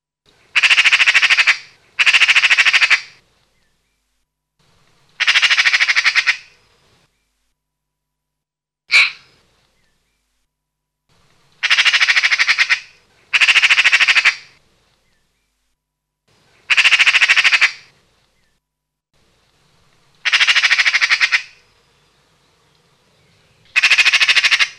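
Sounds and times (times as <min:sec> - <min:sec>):
magpie: 0:00.5 - 0:03.2, 0:05.2 - 0:06.6, 0:08.9 - 0:09.3, 0:11.6 - 0:14.6, 0:16.6 - 0:17.9, 0:20.2 - 0:21.6, 0:23.7 - 0:24.7.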